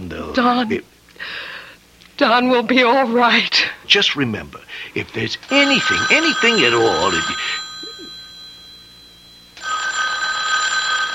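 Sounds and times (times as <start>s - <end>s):
faint room hum: 0.0s - 11.1s
speech: 0.4s - 1.5s, 2.2s - 7.6s
telephone bell ringing with metallic jangle: 5.5s - 11.1s.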